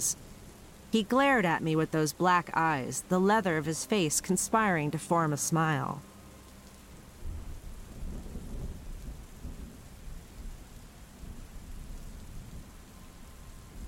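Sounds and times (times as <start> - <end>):
speech: 0.0 - 0.2, 0.9 - 6.1
steady rain of a gathering storm: 0.0 - 13.8
low rolling thunder of a gathering storm: 7.2 - 13.8.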